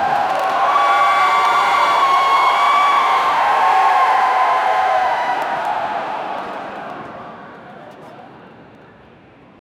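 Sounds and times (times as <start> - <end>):
loud stadium crowd cheering: 0.0 - 7.6.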